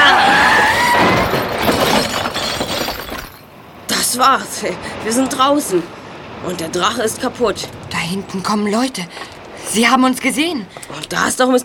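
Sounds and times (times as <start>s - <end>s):
car crashing through a wall at the end of a tunnel by the sea: 0.2s - 3.4s
debris shattering and breaking: 0.2s - 3.5s
speech: 4.2s - 11.6s.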